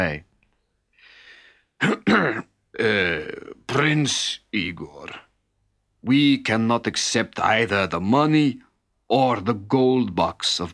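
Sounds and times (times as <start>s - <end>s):
speech: 0.0s - 0.3s, 1.8s - 5.2s, 6.0s - 10.7s
soft breath: 0.9s - 1.8s
old man coughing nervously: 1.8s - 2.6s
old man clearing his throat: 1.8s - 3.6s.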